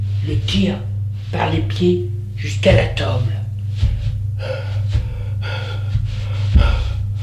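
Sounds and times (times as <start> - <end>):
steady low hum: 0.0 - 7.2
speech: 0.2 - 3.4, 4.4 - 4.8
heavy labored out-of-breath panting: 3.7 - 7.2.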